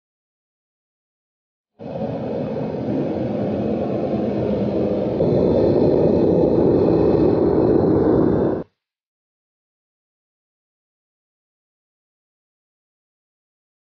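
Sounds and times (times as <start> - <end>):
furnace: 1.8 - 8.9.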